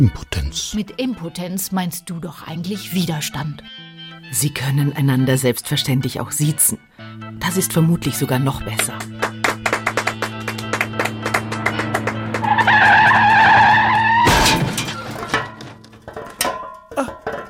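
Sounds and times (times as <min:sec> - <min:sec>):
speech: 0:00.0 - 0:06.8, 0:07.5 - 0:09.2
car tire squealing in a skid: 0:10.9 - 0:15.8
car tire striking a low wall: 0:12.4 - 0:17.4.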